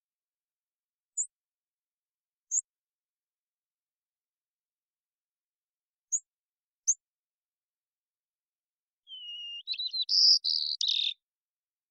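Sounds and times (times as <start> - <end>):
immature white-crowned sparrow Zonotrichia leucophrys singing in Washington: 1.1 - 1.4, 2.4 - 2.7, 6.0 - 7.1, 9.0 - 11.8.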